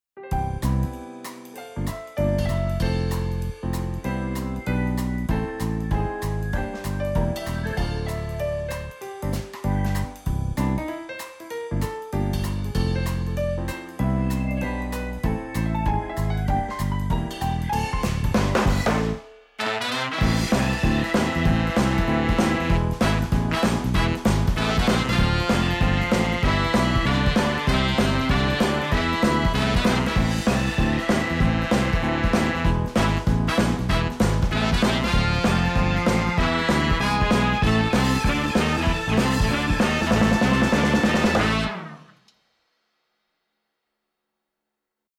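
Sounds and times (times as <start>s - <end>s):
piano: 0.0s - 42.1s
brass instruments: 18.3s - 42.2s.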